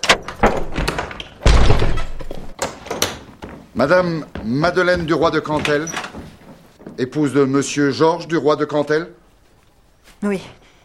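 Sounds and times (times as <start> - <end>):
heavy thuds and bangs against a door as police force it open: 0.0 - 3.3
speech: 3.8 - 6.0, 7.0 - 9.2, 10.2 - 10.6.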